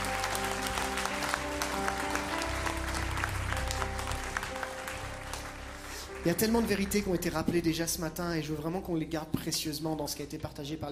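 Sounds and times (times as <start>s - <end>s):
congregation applauding during a church worship service: 0.0s - 8.0s
speech: 6.2s - 10.8s.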